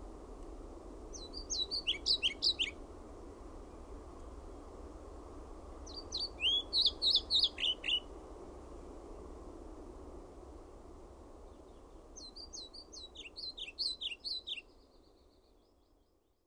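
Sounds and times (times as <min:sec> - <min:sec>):
faint constant hiss: 0:00.0 - 0:16.4
European pied flycatcher singing sweet high alternating notes: 0:01.1 - 0:02.8, 0:05.9 - 0:08.1, 0:11.6 - 0:15.6.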